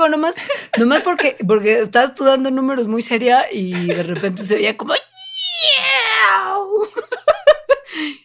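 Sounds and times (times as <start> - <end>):
speech: 0.0 - 5.1
laughter: 0.4 - 1.5, 3.6 - 4.7, 6.8 - 7.8
two baby kittens meowing and caterwauling: 5.1 - 6.7.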